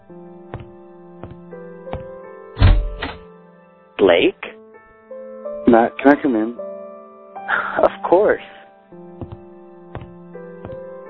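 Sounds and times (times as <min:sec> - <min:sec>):
speech: 0:00.1 - 0:00.6, 0:04.0 - 0:04.5, 0:05.7 - 0:06.6, 0:07.8 - 0:08.6
knocking on the wooden door of a hotel suite: 0:00.5 - 0:03.1, 0:09.2 - 0:10.8.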